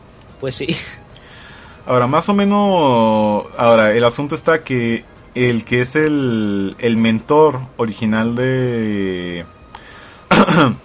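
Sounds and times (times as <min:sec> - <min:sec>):
speech: 0:00.4 - 0:01.0, 0:01.8 - 0:09.6, 0:10.4 - 0:10.8
person with a nagging cough coughing harshly: 0:10.3 - 0:10.8.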